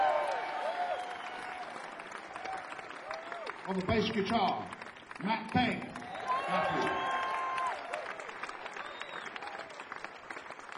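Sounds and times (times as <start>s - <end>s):
crowd whistles: 0.0s - 1.8s, 6.0s - 9.8s
crowd cheers: 0.0s - 10.7s
large audience applauding band introductions at a show in Westbury: 0.0s - 10.7s
speech: 3.7s - 7.1s.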